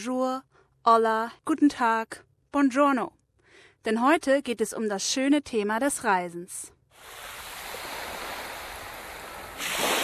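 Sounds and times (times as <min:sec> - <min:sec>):
speech: 0:00.0 - 0:03.2, 0:03.8 - 0:07.2
ocean surf washing against a shore: 0:07.0 - 0:10.0.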